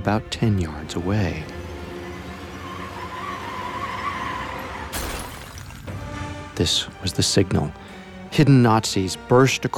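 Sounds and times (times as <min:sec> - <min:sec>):
speech: 0:00.0 - 0:01.6, 0:06.6 - 0:09.7
car tires squealing through a sharp swerve: 0:01.9 - 0:05.0
car skidding and scraping to a stop: 0:02.6 - 0:05.0.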